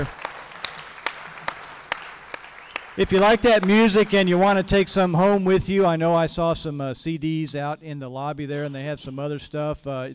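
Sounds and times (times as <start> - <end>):
speech: 0.0 - 0.2, 3.0 - 10.1
audience applause: 0.0 - 4.4
sharp claps: 0.0 - 4.4.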